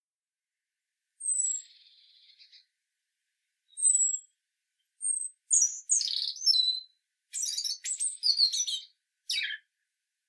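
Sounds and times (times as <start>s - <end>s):
European robin Erithacus rubecula singing high whistles and tinkling phrases: 5.0s - 9.6s.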